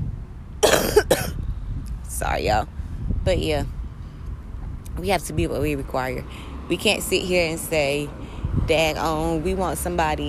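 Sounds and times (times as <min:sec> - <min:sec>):
person with a summer cold coughing: 0:00.6 - 0:01.4
speech: 0:02.2 - 0:03.8, 0:05.0 - 0:10.2.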